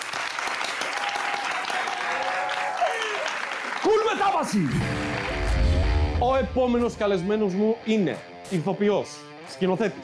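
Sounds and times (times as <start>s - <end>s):
talk-show audience applause for a guest: 0.0s - 6.0s
faint cheering: 0.8s - 4.9s
speech: 3.8s - 5.0s, 6.2s - 10.0s.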